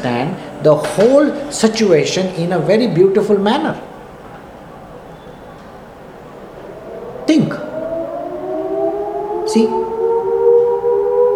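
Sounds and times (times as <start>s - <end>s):
speech: 0.0s - 3.9s, 9.5s - 9.8s
loud siren wailing with climbing pitch: 1.6s - 4.8s, 5.6s - 11.3s.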